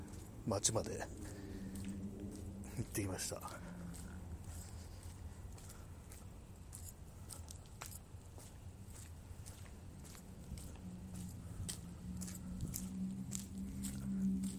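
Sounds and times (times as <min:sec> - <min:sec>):
low steady hum in a park at night in Saitama: 0:00.0 - 0:14.5
soft footsteps in a park at night: 0:00.0 - 0:14.5
speech: 0:00.4 - 0:01.4, 0:02.8 - 0:03.7.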